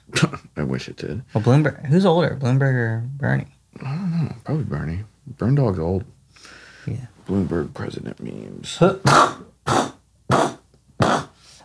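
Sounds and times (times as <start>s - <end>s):
speech: 0.3s - 9.8s
person sneezing in short forceful breathy bursts: 9.0s - 11.6s.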